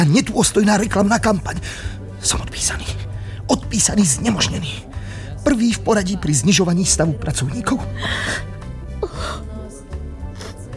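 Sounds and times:
speech: 0.0s - 8.5s
woman crying softly with gasping breaths and whimpering sobs: 7.8s - 9.7s.

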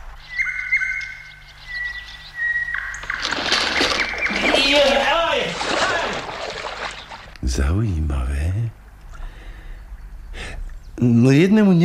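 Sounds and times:
bird whistles and chirps: 0.2s - 3.0s
splash of something falling into water: 3.0s - 7.4s
speech: 7.6s - 8.8s, 11.0s - 11.8s.

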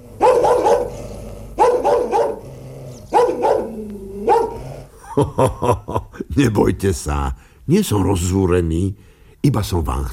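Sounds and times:
dog barking: 0.1s - 4.7s
dog yipping: 0.2s - 0.9s, 1.6s - 2.4s, 3.1s - 4.6s
laughter: 5.0s - 6.4s
speech: 5.2s - 10.1s.

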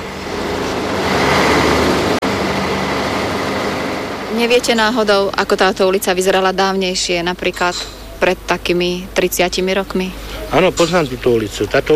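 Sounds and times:
dense street traffic noise on Botová Street: 0.0s - 11.9s
low idling engine rumble from a standing train: 0.0s - 11.9s
speech: 4.4s - 11.9s.

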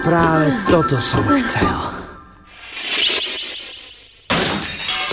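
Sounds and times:
speech: 0.2s - 1.9s
rising whoosh: 2.5s - 4.3s
glass shards scattering: 4.3s - 5.1s
window glass shattering, broken with a scepter: 4.3s - 5.1s.

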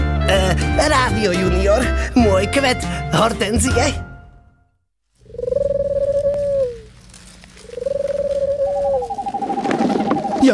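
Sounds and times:
speech: 0.3s - 4.1s
owl hooting: 5.2s - 10.5s.

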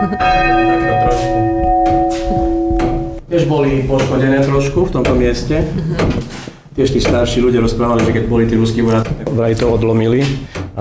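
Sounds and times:
speech: 0.0s - 1.4s, 3.3s - 10.7s
church bells ringing: 0.0s - 3.4s.

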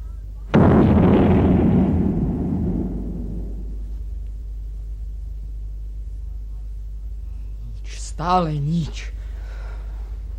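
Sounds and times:
cannon firing a loud shot with rumbling decay: 0.5s - 4.6s
speech: 8.2s - 9.2s.

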